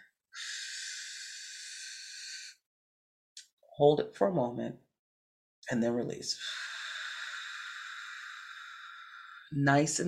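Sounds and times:
slow deep inhale during a deep-breathing exercise: 0.4s - 2.6s, 6.4s - 9.6s
speech: 3.8s - 4.8s, 5.7s - 6.7s, 9.5s - 10.0s.

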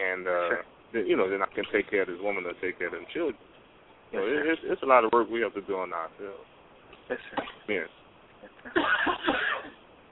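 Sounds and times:
speech: 0.0s - 6.5s, 7.1s - 9.4s
person getting over the flu coughing: 8.6s - 9.8s.

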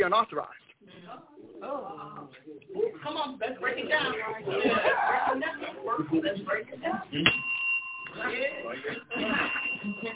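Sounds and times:
speech: 0.0s - 7.5s
bell ringing: 7.3s - 10.1s.

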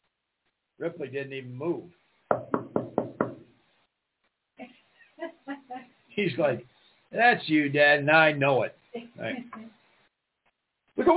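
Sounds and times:
speech: 0.8s - 2.6s, 6.2s - 9.6s
firm knocking on a door: 2.3s - 3.5s.

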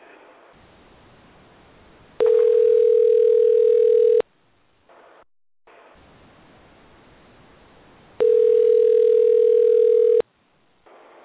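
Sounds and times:
telephone line ringing after a number is dialed: 2.2s - 4.3s, 8.2s - 10.2s.

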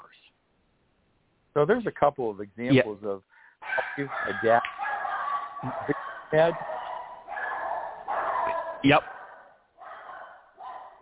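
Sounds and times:
speech: 1.6s - 4.8s, 5.6s - 6.8s, 8.8s - 9.1s
dog barking: 3.6s - 11.0s.

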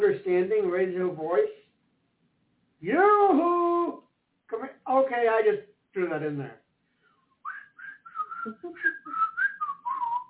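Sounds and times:
speech: 0.3s - 1.6s, 2.8s - 3.7s, 4.5s - 6.6s, 8.4s - 9.0s
person whistling a short lilting tune: 7.4s - 10.2s.

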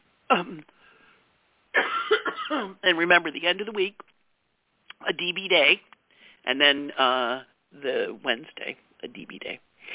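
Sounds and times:
person coughing: 0.3s - 0.7s, 1.8s - 2.8s
speech: 0.3s - 0.8s, 2.5s - 4.1s, 5.0s - 9.9s.

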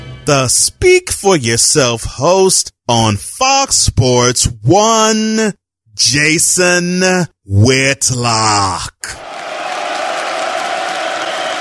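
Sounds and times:
speech: 0.3s - 9.3s
crowd cheering and applause for an announced winner: 9.2s - 11.6s.

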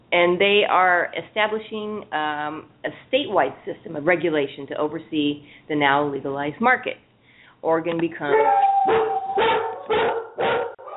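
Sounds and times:
speech: 0.1s - 7.0s, 7.6s - 9.0s
dogs barking: 8.3s - 10.9s.

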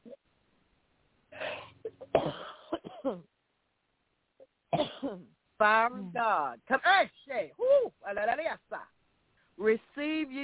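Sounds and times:
harsh throaty coughs: 1.5s - 3.3s, 4.7s - 5.2s
speech: 3.1s - 3.3s, 5.6s - 8.9s, 9.6s - 10.4s.

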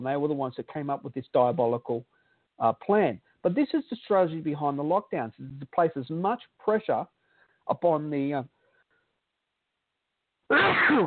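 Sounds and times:
speech: 0.0s - 8.6s, 10.5s - 11.0s
person sneezing: 10.5s - 11.0s.

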